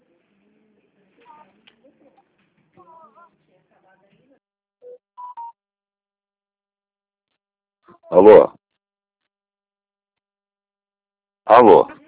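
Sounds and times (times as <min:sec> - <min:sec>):
quiet talk: 0:00.0 - 0:04.5, 0:11.5 - 0:12.0
telephone keypad being dialed: 0:04.8 - 0:05.6
speech: 0:08.1 - 0:08.6, 0:11.5 - 0:11.9.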